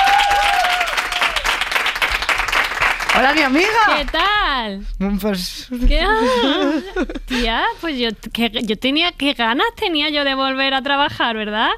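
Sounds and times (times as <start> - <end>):
loud continuous audience applause welcoming a guest onto a show: 0.0 - 4.2
speech: 3.2 - 11.7
laughter: 6.0 - 7.7.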